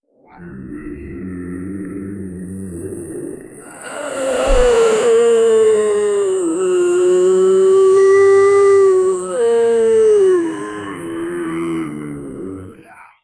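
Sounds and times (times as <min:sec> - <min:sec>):
many zombies roaring: 0:00.4 - 0:13.2.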